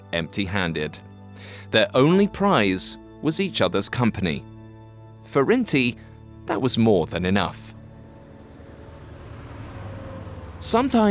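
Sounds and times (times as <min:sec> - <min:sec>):
speech: 0:00.1 - 0:04.5, 0:05.3 - 0:07.8, 0:10.6 - 0:11.0
newspaper delivery truck engine rumbling as it speeds past: 0:07.1 - 0:11.0.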